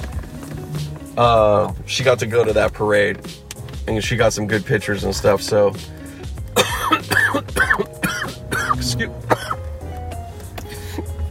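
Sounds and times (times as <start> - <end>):
speech: 1.2 - 6.0, 8.8 - 9.4
person coughing hoarse from cannabis smoke: 6.6 - 9.6
throat clearing: 6.6 - 9.6.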